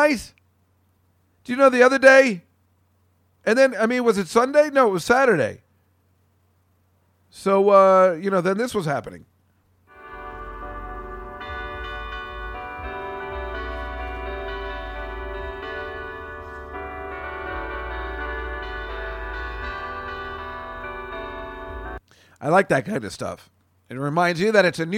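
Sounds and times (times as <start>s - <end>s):
speech: 0.0s - 0.4s, 1.5s - 2.5s, 3.4s - 5.6s, 7.3s - 9.3s, 22.4s - 24.9s
church bells ringing in a sustained peal: 9.9s - 22.0s.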